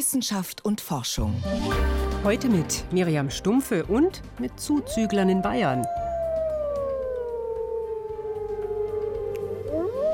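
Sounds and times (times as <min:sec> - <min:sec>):
speech: 0:00.0 - 0:06.0
wolves howling: 0:04.7 - 0:10.1.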